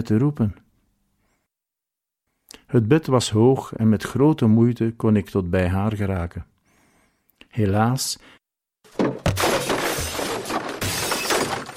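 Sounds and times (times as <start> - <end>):
speech: 0.0 - 0.6, 2.7 - 6.5, 7.5 - 9.3
medicine bottles falling from a toppled nightstand and crashing: 8.9 - 11.7.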